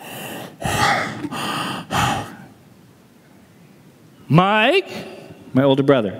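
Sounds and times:
voice imitating heavy raspy breathing of an intruder: 0.0 - 2.6
speech: 4.3 - 6.1.

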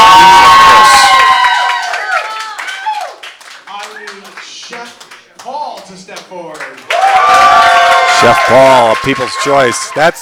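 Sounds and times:
audience cheering and whooping: 0.0 - 3.9, 6.8 - 10.2
audience clapping: 0.0 - 10.2
speech: 8.2 - 10.2.

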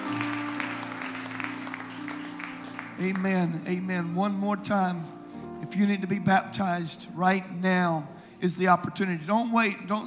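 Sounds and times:
audience applause in praise of the Lord: 0.0 - 3.5
sustained organ-like chords: 0.0 - 10.0
speech: 3.0 - 10.0.

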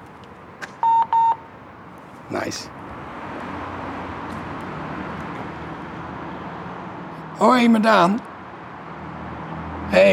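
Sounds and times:
transit card reader check-out beeps: 0.8 - 1.4
speech: 2.3 - 2.8, 7.4 - 8.3, 10.0 - 10.1.

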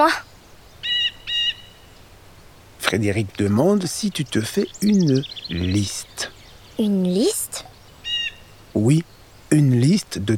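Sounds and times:
speech: 0.0 - 0.2, 2.9 - 7.7, 8.8 - 10.3
blue jay calling: 0.0 - 10.1.

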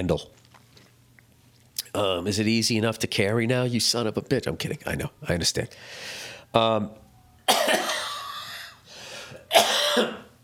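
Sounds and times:
speech: 0.0 - 0.4, 2.0 - 7.0
person in a coughing fit with raspy harsh coughing: 7.5 - 8.8, 9.4 - 10.4.

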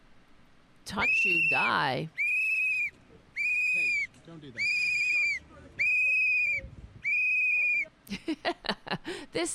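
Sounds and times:
speech: 0.9 - 2.2, 4.3 - 4.8, 8.3 - 9.5
loud sustained whistle blasts: 1.0 - 7.9.

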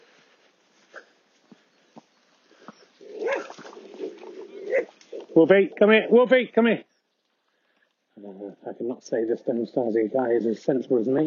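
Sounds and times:
dog on a long yellow lead yipping: 3.2 - 3.6
speech: 5.4 - 6.9, 8.7 - 11.2.

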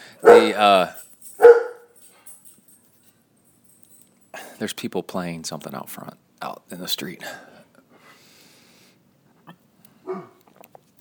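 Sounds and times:
dogs barking: 0.2 - 0.8, 1.4 - 2.0
speech: 0.2 - 1.0, 4.6 - 7.5.

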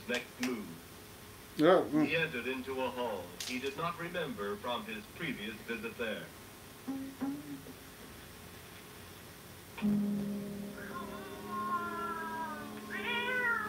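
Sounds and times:
speech: 0.1 - 0.6, 1.6 - 7.8, 9.8 - 10.2
cat meowing: 10.8 - 13.6.

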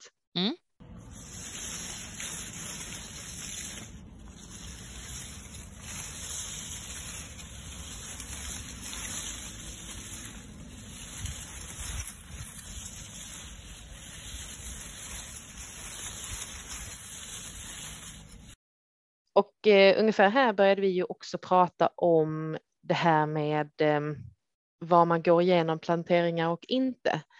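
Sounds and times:
speech: 0.0 - 0.6, 19.6 - 27.3
dense low sasa bamboo leaves rustling: 0.8 - 18.6.

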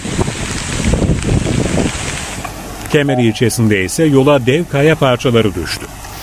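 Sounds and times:
waves up to 4 metres high crashing at sea cliffs in a storm: 0.0 - 4.4
storm wind buffeting the microphone: 0.0 - 4.5
speech: 2.9 - 6.0.

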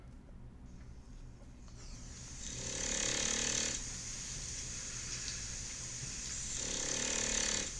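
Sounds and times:
low hum: 0.0 - 7.7
dog snoring: 2.4 - 3.8, 6.5 - 7.7.

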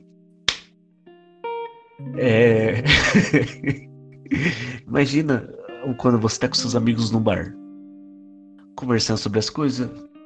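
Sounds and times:
sharp slap: 0.5 - 0.7
speech: 2.0 - 7.6, 8.8 - 10.1
laughter: 2.5 - 4.8.

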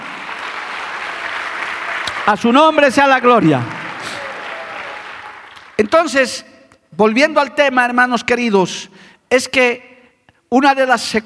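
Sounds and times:
audience applauding: 0.0 - 6.2
man speaking loudly: 2.2 - 4.4, 5.8 - 11.2
speech: 2.3 - 3.8, 5.8 - 9.9, 10.5 - 11.2.

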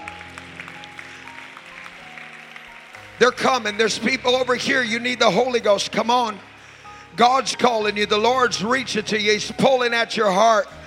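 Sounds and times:
crowd clapping: 0.0 - 8.4
speech: 3.2 - 6.5, 7.2 - 10.8.

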